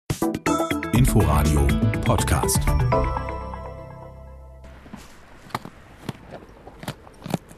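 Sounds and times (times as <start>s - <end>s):
speech: 1.2s - 3.4s
two circus camels munching carrots: 4.7s - 7.5s.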